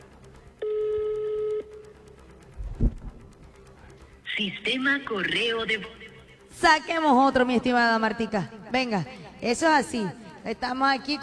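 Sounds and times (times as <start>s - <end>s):
buzzing telephone tone as a number is redialed: 0.0s - 3.5s
soft low thump: 2.6s - 3.2s
speech: 4.4s - 6.0s, 6.6s - 11.2s.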